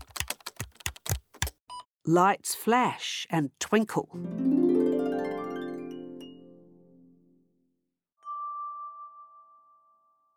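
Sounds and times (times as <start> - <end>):
key presses on a computer keyboard: 0.0 - 1.6
speech: 2.1 - 4.6.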